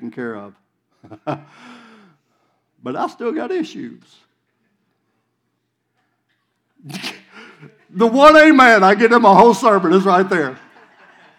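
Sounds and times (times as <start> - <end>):
speech: 0.1 - 1.9, 2.8 - 4.3, 6.8 - 10.6
audience member sneezing during a sermon: 6.8 - 7.8.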